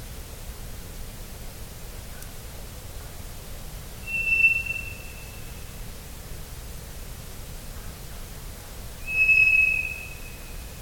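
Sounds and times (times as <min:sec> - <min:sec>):
steady background hiss: 0:00.0 - 0:10.8
ground thrush whistling: 0:09.1 - 0:10.3.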